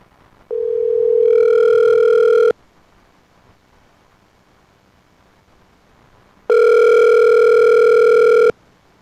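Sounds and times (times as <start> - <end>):
telephone dial tone: 0.5 - 2.5, 6.5 - 8.5.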